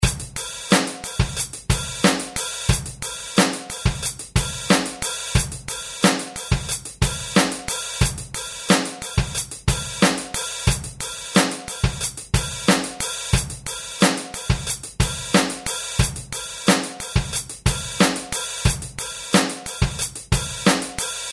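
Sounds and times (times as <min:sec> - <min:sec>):
heavy beat: 0:00.0 - 0:21.3.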